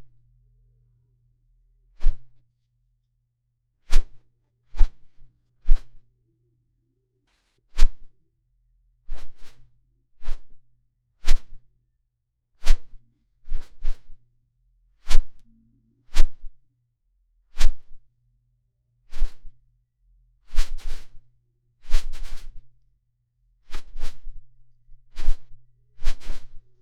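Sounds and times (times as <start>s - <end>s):
big dragon wing flaps moving air: 2.0s - 2.3s, 3.9s - 4.2s, 4.7s - 6.0s, 11.3s - 11.6s, 13.5s - 14.1s, 15.1s - 15.4s, 19.1s - 19.5s, 20.5s - 21.1s, 21.9s - 22.6s, 23.7s - 24.4s, 25.1s - 26.6s.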